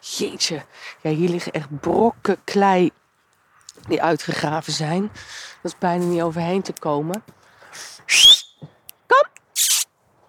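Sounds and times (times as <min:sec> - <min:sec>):
speech: 0:00.2 - 0:03.0, 0:03.8 - 0:09.4
person whistling to call a dog: 0:08.1 - 0:08.6.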